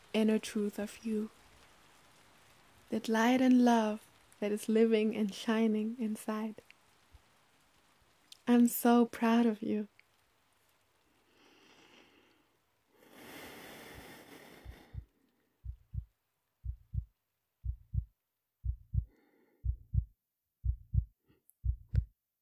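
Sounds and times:
speech: 0.2s - 1.4s, 2.9s - 6.7s, 8.5s - 9.9s
rustling breathy noise: 11.0s - 15.8s
heartbeat: 14.6s - 22.1s.

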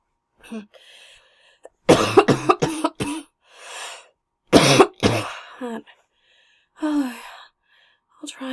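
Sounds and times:
speech: 0.5s - 1.1s, 1.9s - 2.6s
breathing: 0.7s - 1.8s, 3.4s - 4.2s, 5.9s - 8.1s
person coughing: 1.9s - 3.3s, 4.6s - 5.5s.

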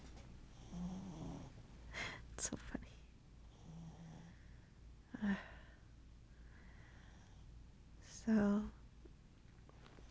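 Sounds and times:
puppy snoring faintly: 0.5s - 1.6s, 3.5s - 4.3s
speech: 2.4s - 2.6s, 8.3s - 8.6s.

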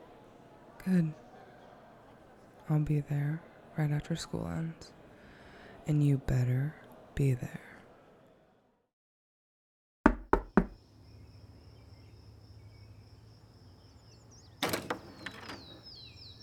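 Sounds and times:
speech: 0.8s - 1.2s, 2.7s - 5.0s, 5.8s - 7.7s
knocking on the door of a home: 10.1s - 10.8s.

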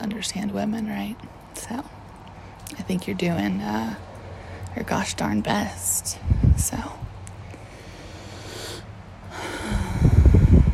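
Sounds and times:
speech: 0.1s - 2.0s, 2.7s - 4.1s, 4.7s - 7.1s
deep breathing outdoors: 7.4s - 10.7s.

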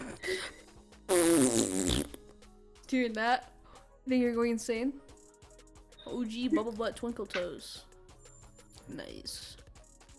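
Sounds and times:
fart blown into a phone during a prank call: 1.1s - 2.3s
speech: 2.9s - 5.0s, 6.1s - 7.9s, 8.9s - 9.6s.

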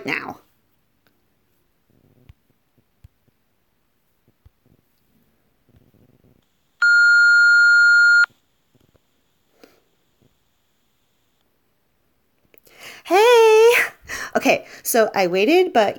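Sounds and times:
faint small noises: 0.0s - 14.4s
voicemail beep: 6.8s - 8.3s
speech: 14.9s - 15.9s.

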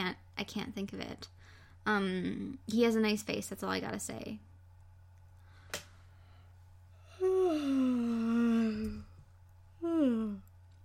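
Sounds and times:
speech: 0.1s - 4.5s
long voiced yawn close to the mic: 7.1s - 9.1s, 9.8s - 10.4s.

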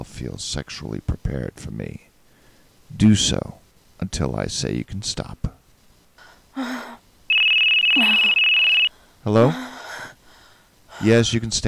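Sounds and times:
speech: 0.1s - 2.1s, 2.9s - 5.5s, 9.2s - 9.7s, 11.0s - 11.6s
telephone ringing with a high trilling ring: 7.3s - 8.9s.

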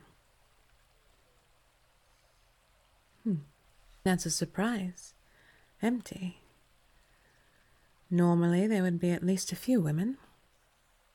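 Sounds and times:
water flowing at a desert spring: 0.0s - 11.1s
speech: 3.2s - 5.2s, 5.8s - 6.4s, 8.1s - 10.3s.

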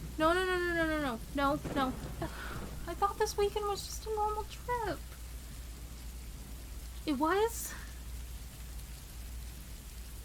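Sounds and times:
low rumble: 0.0s - 7.1s
soft even rain hiss: 0.0s - 10.2s
speech: 0.2s - 5.2s, 7.0s - 7.8s.

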